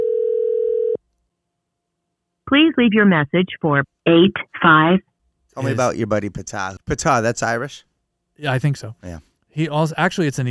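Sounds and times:
outgoing phone call ringing tone: 0.0s - 1.0s
speech: 2.5s - 10.4s.

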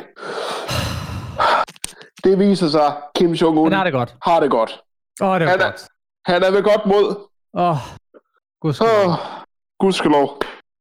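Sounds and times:
deep breath drawn in: 0.2s - 1.6s
speech: 2.2s - 8.0s, 8.6s - 10.6s.

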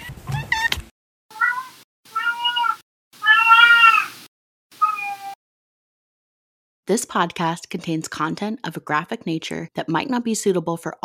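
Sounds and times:
cat meowing: 1.3s - 4.2s, 4.8s - 5.4s
speech: 6.9s - 11.0s.

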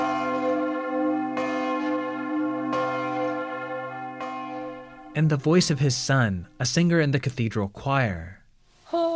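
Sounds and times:
deep tenor church bell tolling: 0.0s - 7.0s
speech: 5.2s - 9.0s.

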